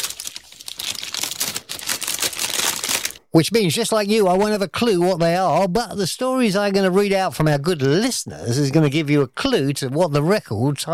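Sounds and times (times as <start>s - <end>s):
dense crinkly rustling shuffle sound effect: 0.0s - 3.2s
speech: 3.3s - 10.9s.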